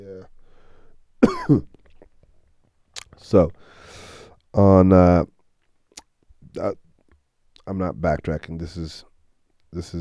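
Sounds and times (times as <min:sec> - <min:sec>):
harsh coughs after smoking: 0:01.2 - 0:01.7
speech: 0:01.5 - 0:01.8, 0:03.2 - 0:03.8, 0:04.5 - 0:05.3, 0:06.6 - 0:06.8, 0:07.7 - 0:09.1, 0:09.7 - 0:10.0.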